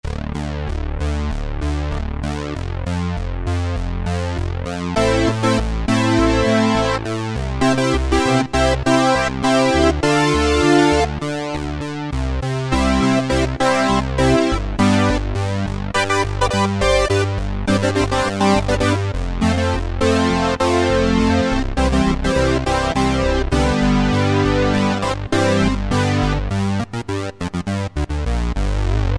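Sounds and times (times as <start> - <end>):
Roland MKS-50 polyphonic synthesizer: 0.1 - 29.1.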